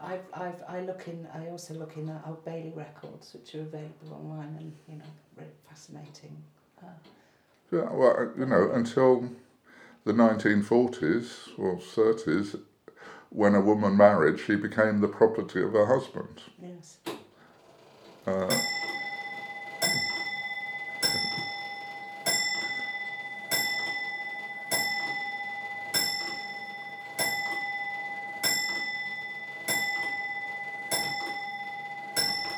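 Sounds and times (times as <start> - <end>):
speech: 0.1 - 9.4, 10.0 - 12.7, 13.3 - 17.1, 18.3 - 18.8
clock chiming with bright metallic strikes: 18.1 - 32.5.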